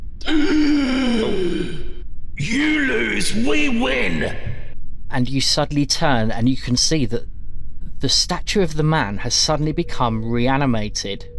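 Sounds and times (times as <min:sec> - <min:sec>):
person imitating a gasp: 0:00.2 - 0:02.0
speech: 0:03.2 - 0:04.5, 0:05.1 - 0:07.3, 0:08.0 - 0:11.3.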